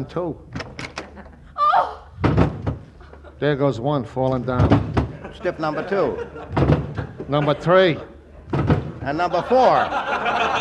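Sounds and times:
speech: 0:00.0 - 0:00.6, 0:03.4 - 0:06.7, 0:07.3 - 0:10.5
closet door hinges creaking open: 0:00.5 - 0:01.4, 0:02.2 - 0:03.2, 0:04.3 - 0:05.2, 0:06.5 - 0:07.4, 0:08.4 - 0:09.2
dull heavy thump: 0:02.2 - 0:02.9, 0:06.5 - 0:07.3, 0:08.5 - 0:09.1
laughter: 0:05.1 - 0:08.2, 0:09.1 - 0:10.5.

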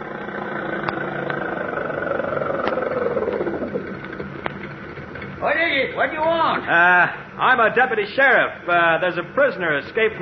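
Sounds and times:
car engine running: 0:00.0 - 0:05.4
speech: 0:05.5 - 0:10.2.

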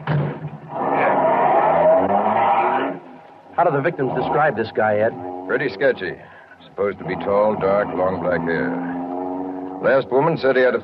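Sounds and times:
car engine starting, revving and pulling away: 0:00.0 - 0:03.0, 0:03.6 - 0:10.8
speech: 0:03.6 - 0:09.0, 0:09.8 - 0:10.8.

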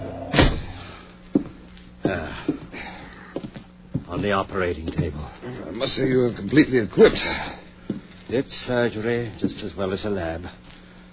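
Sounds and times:
door kicked shut with a heavy thud: 0:00.0 - 0:00.8
speech: 0:02.1 - 0:02.8, 0:04.1 - 0:07.6, 0:08.3 - 0:10.6.

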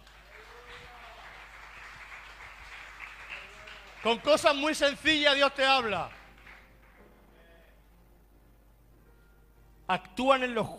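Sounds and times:
audience clapping: 0:00.0 - 0:07.2
speech: 0:04.0 - 0:06.2, 0:09.9 - 0:10.7.

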